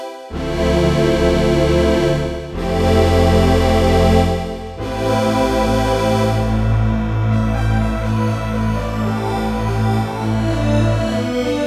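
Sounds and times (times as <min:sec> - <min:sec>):
brassy synth voice on a Roland D-10: 0:00.3 - 0:11.6.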